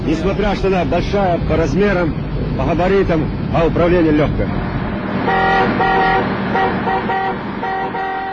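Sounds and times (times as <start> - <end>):
110-ton BelAZ mining dump truck engine rumble: 0.0 - 8.3
speech: 0.1 - 8.2
110-ton BelAZ mining dump truck horn blasts: 5.2 - 8.3.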